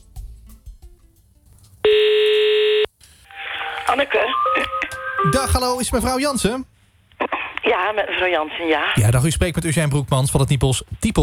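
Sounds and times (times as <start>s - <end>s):
telephone tone as a call is placed: 1.9s - 5.5s
speech: 3.9s - 6.7s, 7.7s - 11.2s.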